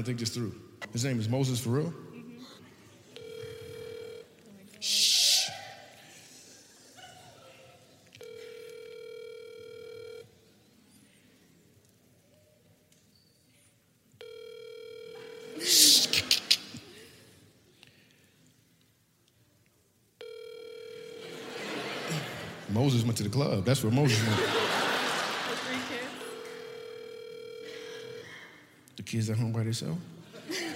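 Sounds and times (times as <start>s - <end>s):
speech: 0.0s - 2.6s, 23.1s - 24.8s, 29.2s - 30.2s
phone call electronic ringback tone on speakerphone: 3.2s - 4.3s, 8.2s - 10.3s, 14.2s - 15.9s, 20.2s - 21.6s, 26.2s - 28.3s
laughter: 15.4s - 17.3s, 21.2s - 22.7s, 23.7s - 26.9s, 30.2s - 30.7s.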